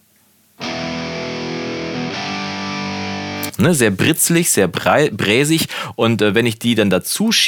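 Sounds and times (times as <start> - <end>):
two overdubbed bright distorted electric guitars playing sustained chords: 0.6 - 5.4
speech: 3.6 - 7.4.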